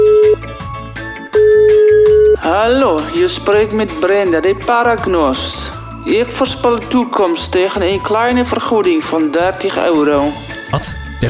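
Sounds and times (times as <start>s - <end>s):
ringback tone on an outgoing telephone call: 0.0s - 0.5s, 1.3s - 2.5s
music: 0.0s - 11.2s
speech: 2.6s - 11.2s.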